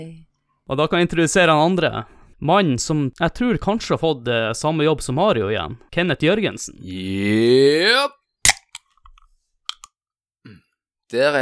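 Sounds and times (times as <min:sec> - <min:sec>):
speech: 0:00.0 - 0:08.2, 0:11.1 - 0:11.4
Red Bull drink can being cracked open: 0:08.5 - 0:08.8.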